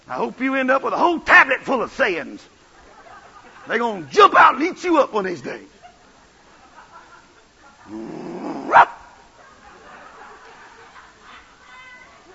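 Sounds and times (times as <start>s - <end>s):
speech: 0.1s - 2.6s, 3.7s - 5.7s, 7.9s - 8.9s
laughter: 2.6s - 12.3s
person growling like an animal: 7.9s - 8.9s.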